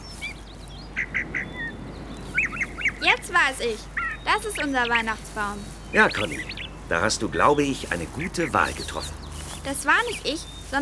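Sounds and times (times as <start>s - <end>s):
small bird chirping while perched in a tree: 0.0s - 10.8s
soft steady hiss: 0.0s - 10.8s
speech: 3.4s - 10.8s.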